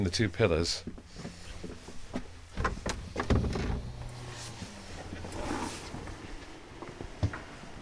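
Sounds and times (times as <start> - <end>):
speech: 0.0 - 1.0
dehumidifier humming inside chapel: 0.9 - 7.8.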